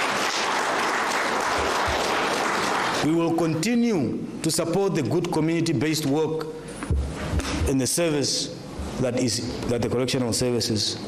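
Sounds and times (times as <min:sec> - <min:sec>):
audience applause at a public event honouring correctional services in the Kunene region: 0:00.0 - 0:03.1
speech: 0:03.0 - 0:11.0.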